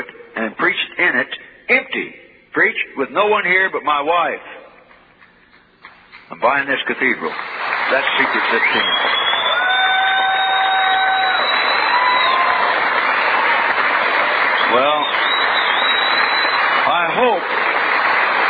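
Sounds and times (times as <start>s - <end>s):
speech: 0.6s - 4.6s, 6.3s - 9.2s, 14.7s - 15.0s
large audience clapping: 4.8s - 18.4s.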